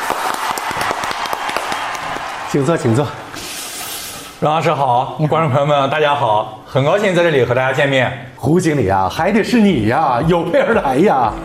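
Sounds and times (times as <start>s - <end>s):
audience applause welcoming a guest on stage: 0.0s - 3.1s
speech: 2.5s - 3.2s, 4.4s - 11.4s.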